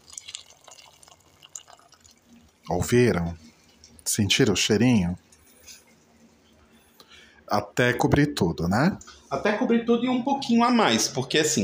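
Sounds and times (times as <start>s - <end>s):
water pouring into a cooking pot: 0.0s - 3.3s
speech: 2.7s - 3.4s, 4.1s - 5.2s, 7.5s - 11.6s.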